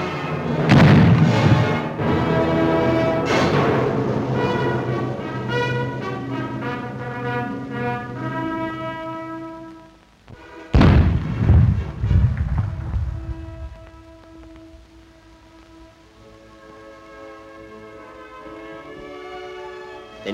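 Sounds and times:
sustained brass band music: 0:00.0 - 0:20.3
old wooden cannon blasts: 0:00.5 - 0:04.8, 0:10.7 - 0:14.8.

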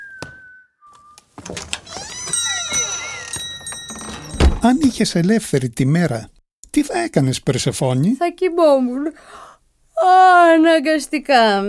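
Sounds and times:
man whistling a short tune of two held notes: 0:00.0 - 0:01.2
speech: 0:01.5 - 0:01.8, 0:04.6 - 0:11.6.

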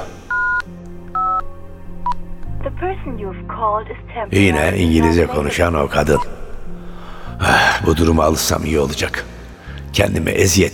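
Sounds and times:
low hum: 0:00.0 - 0:08.1
phone keypad dialing tones: 0:00.3 - 0:01.4
speech: 0:02.8 - 0:06.4, 0:07.4 - 0:09.3, 0:10.0 - 0:10.7.

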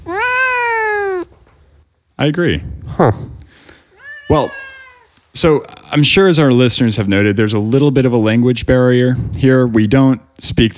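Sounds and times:
cat meowing: 0:00.0 - 0:01.4, 0:03.9 - 0:05.2
speech: 0:02.2 - 0:03.3, 0:04.3 - 0:04.6, 0:05.4 - 0:10.7.

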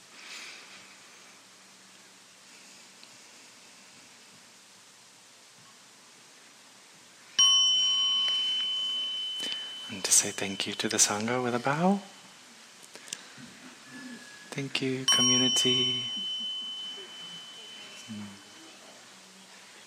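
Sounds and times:
soft steady hiss: 0:00.0 - 0:19.8
small bell struck and ringing: 0:07.4 - 0:12.6, 0:13.9 - 0:19.1
speech: 0:10.0 - 0:12.2, 0:14.6 - 0:16.3.

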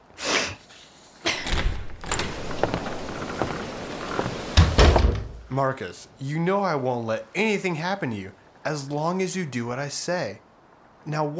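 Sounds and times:
steady hiss: 0:00.0 - 0:11.3
door pulled open with a scraping creaking sweep: 0:01.3 - 0:05.4
knocks and rattles: 0:01.4 - 0:05.5
speech: 0:05.6 - 0:10.4, 0:11.0 - 0:11.3.

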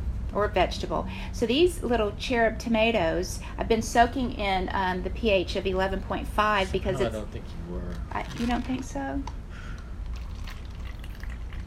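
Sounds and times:
speech: 0:00.4 - 0:09.4
alkaline water pouring over cherry tomatoes in a bowl: 0:10.1 - 0:11.6.

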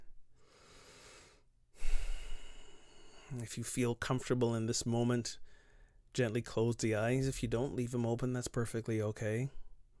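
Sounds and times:
deep breath during a guided meditation: 0:00.0 - 0:03.4, 0:05.4 - 0:06.0
speech: 0:03.3 - 0:05.4, 0:06.1 - 0:09.6.

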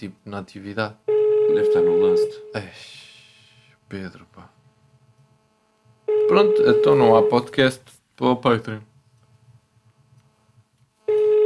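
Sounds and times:
speech: 0:00.0 - 0:03.1, 0:03.9 - 0:04.6, 0:06.3 - 0:08.9
phone call tone of an unanswered outgoing call: 0:01.1 - 0:02.6, 0:06.1 - 0:07.5, 0:11.1 - 0:11.4.

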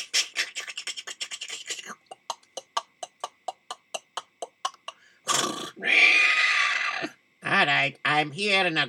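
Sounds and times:
horse whinnying: 0:05.4 - 0:07.1
speech: 0:07.6 - 0:08.8.

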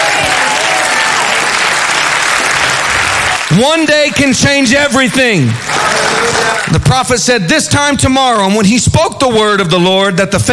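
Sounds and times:
large audience clapping hands: 0:00.0 - 0:06.9
speech: 0:03.6 - 0:10.5.

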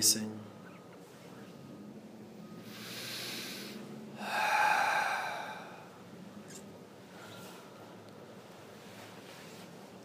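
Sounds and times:
slow deep breath in through the nose: 0:02.6 - 0:06.0.

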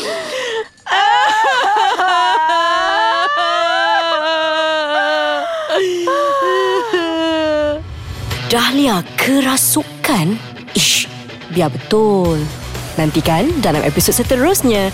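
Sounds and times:
woman crying in long sustained wailing sobs: 0:00.0 - 0:07.8
speech: 0:08.6 - 0:14.9.

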